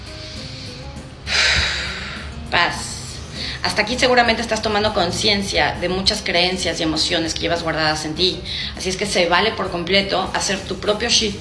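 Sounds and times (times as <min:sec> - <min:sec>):
slow deep breath in and out: 0:00.0 - 0:02.5, 0:03.2 - 0:03.6
speech: 0:02.5 - 0:02.8, 0:03.6 - 0:11.3.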